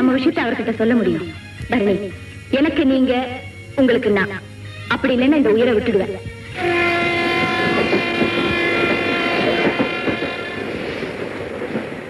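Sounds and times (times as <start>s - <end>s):
speech: 0.2s - 6.9s
train horn pulling into a station: 6.5s - 11.6s.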